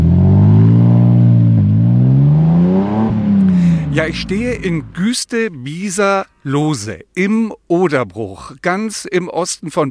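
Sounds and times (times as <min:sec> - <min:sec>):
car engine revving through gear changes as the vehicle accelerates away: 0:00.0 - 0:05.0
speech: 0:04.0 - 0:09.9.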